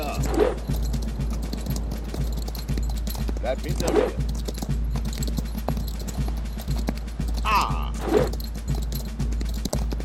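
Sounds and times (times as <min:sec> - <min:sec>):
hooves of a ridden horse clip-clopping: 0:00.0 - 0:10.0
speech: 0:03.5 - 0:04.3.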